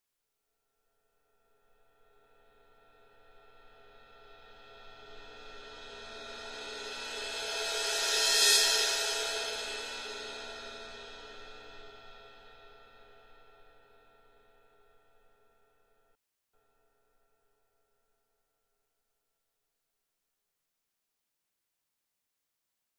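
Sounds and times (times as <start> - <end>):
thin cymbal crescendo: 1.7 - 15.8.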